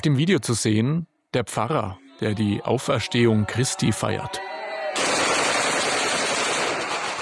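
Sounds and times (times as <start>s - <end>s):
speech: 0.0s - 5.1s
rapid celebratory gunfire: 5.0s - 7.2s.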